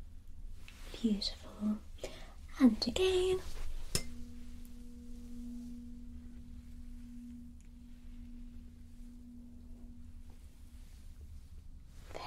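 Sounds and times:
quiet hum: 0:00.0 - 0:12.2
tuning fork struck and ringing with a low-pitched tone: 0:00.4 - 0:12.2
speech: 0:01.0 - 0:01.9, 0:02.6 - 0:03.6.

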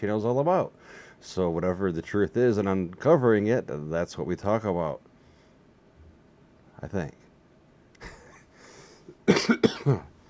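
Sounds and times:
speech: 0:00.0 - 0:05.1, 0:06.8 - 0:07.2, 0:09.3 - 0:10.1
person coughing harshly: 0:09.2 - 0:10.1.

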